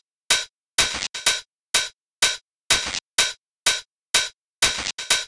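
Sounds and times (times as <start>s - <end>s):
electro dance club drum beat: 0.3s - 1.4s, 2.3s - 3.3s, 4.6s - 5.2s.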